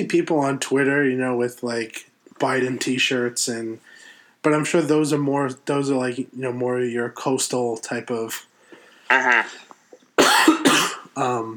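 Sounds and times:
speech: 0.0 - 8.5, 9.1 - 9.6, 11.2 - 11.5
person coughing: 10.2 - 11.2.

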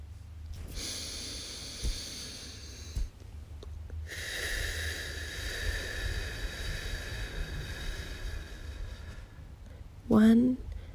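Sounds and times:
slow deliberate breathing in and out: 0.6 - 3.2, 3.9 - 10.0
speech: 10.2 - 10.6.

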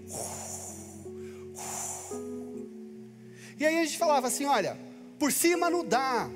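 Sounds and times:
voice imitating strong winds and typhoons: 0.0 - 2.3
speech: 3.6 - 6.3.

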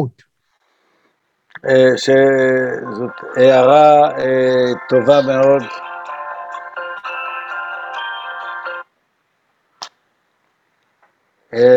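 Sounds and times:
speech: 0.0 - 0.3, 1.6 - 5.9, 11.5 - 11.7
phone ringing with a bright melodic ringtone: 2.4 - 8.9.

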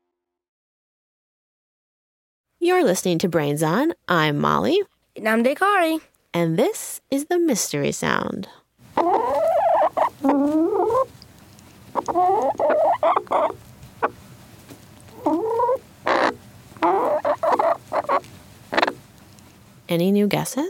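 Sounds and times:
speech: 2.6 - 9.2, 10.2 - 11.1, 12.0 - 14.2, 19.9 - 20.6
chickens clucking: 8.9 - 19.6.

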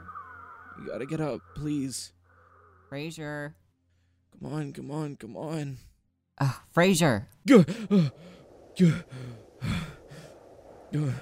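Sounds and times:
speech: 0.8 - 2.2, 2.9 - 3.6, 4.3 - 9.8, 10.9 - 11.2
heavy ragged breathing with voiced gasps and sighing exhales: 7.7 - 10.4.

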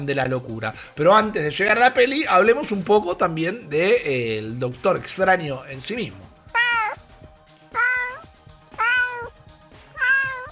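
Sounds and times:
speech: 0.0 - 6.3
cat meowing: 6.5 - 7.1, 7.7 - 10.4.

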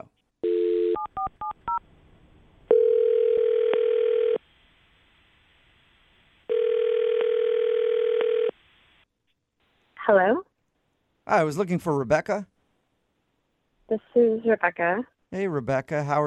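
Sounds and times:
telephone dial tone: 0.4 - 1.8, 2.7 - 4.4, 6.5 - 8.5
speech: 10.1 - 10.4, 11.3 - 12.5, 13.9 - 16.2.

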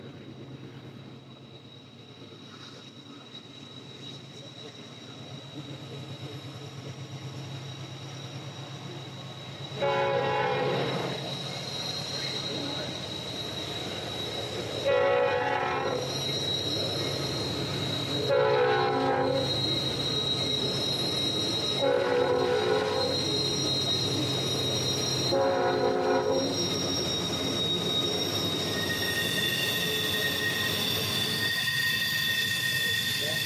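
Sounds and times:
rumble of train's rolling wheels and engine: 0.0 - 33.4
train horn blasts: 9.8 - 11.2, 14.8 - 16.1, 18.2 - 19.5, 21.8 - 23.3, 25.3 - 26.6.

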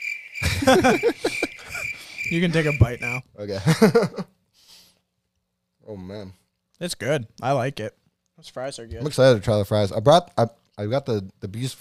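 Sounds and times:
cricket trilling: 0.0 - 3.2
voiced laugh-like vocal sounds: 0.4 - 4.3
speech: 0.6 - 1.4, 2.3 - 4.3, 5.9 - 11.7.

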